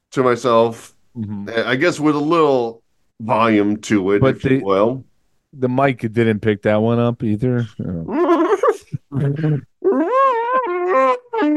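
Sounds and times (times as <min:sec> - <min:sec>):
speech: 0:00.2 - 0:08.2, 0:09.1 - 0:10.1
laughter: 0:08.1 - 0:09.7
person imitating an elephant trumpeting: 0:09.3 - 0:11.5.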